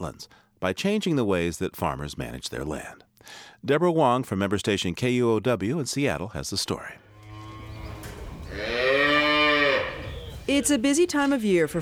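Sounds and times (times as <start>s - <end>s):
speech: 0.0s - 7.0s, 10.5s - 11.8s
cow mooing in a farm pen: 7.0s - 10.6s.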